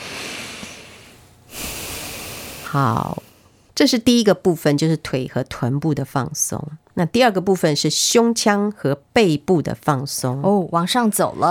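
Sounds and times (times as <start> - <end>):
deep breathing during a stretching and relaxation exercise: 0.0 - 3.8
speech: 2.7 - 11.5.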